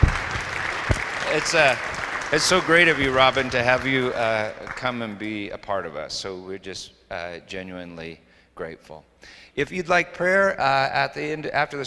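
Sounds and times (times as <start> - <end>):
audience applauding: 0.0 - 5.5
speech: 1.3 - 11.8.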